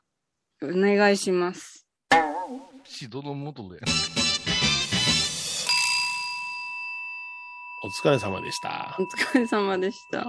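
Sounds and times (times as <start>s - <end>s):
speech: 0.6s - 4.2s, 7.8s - 10.2s
mobile phone ringing with a bright electronic melody: 5.6s - 7.1s.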